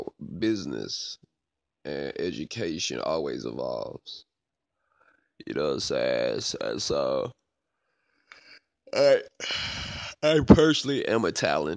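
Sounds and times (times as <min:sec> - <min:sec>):
speech: 0:00.4 - 0:01.2, 0:01.8 - 0:04.3, 0:05.4 - 0:07.4, 0:08.9 - 0:11.7
person yawning aloud: 0:09.0 - 0:10.1.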